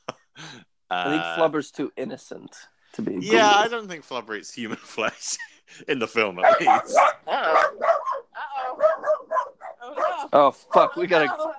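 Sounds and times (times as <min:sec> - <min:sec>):
speech: 0:00.6 - 0:08.1, 0:10.3 - 0:11.5
dog barking yappily: 0:06.4 - 0:10.8.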